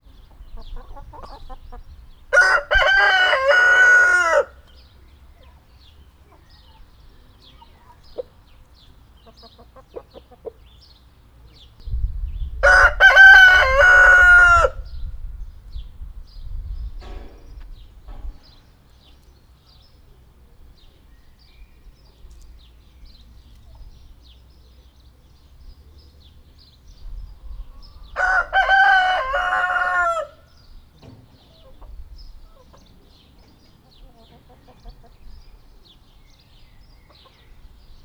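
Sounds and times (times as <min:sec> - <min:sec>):
rooster crowing in Nyíregyháza zoo: 0:02.3 - 0:04.6, 0:12.6 - 0:14.8, 0:28.2 - 0:30.5.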